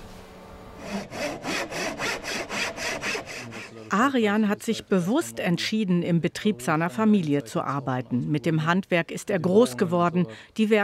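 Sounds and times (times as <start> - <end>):
hand saw cutting through wood: 0.8 - 3.9
speech: 3.9 - 10.8.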